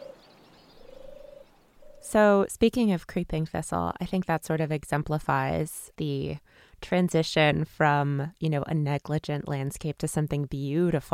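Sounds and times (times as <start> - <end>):
turtle dove cooing: 0.0 - 2.1
speech: 2.0 - 11.1.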